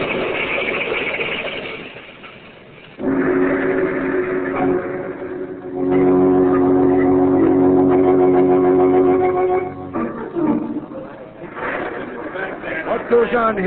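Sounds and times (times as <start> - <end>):
car crash on a village highway on a stormy night: 0.0 - 6.9
car engine roaring while speeding along a village highway on a stormy night: 2.9 - 12.3
laughter: 10.9 - 13.6
speech: 13.3 - 13.6.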